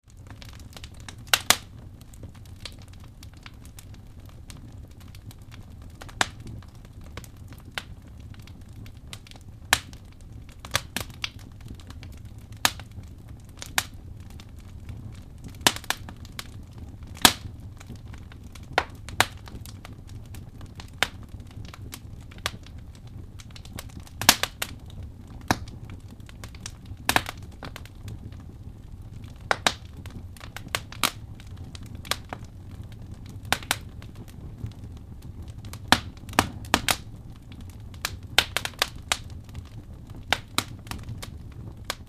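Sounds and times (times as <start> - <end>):
birch wood crackling and burning: 0.0 - 42.0.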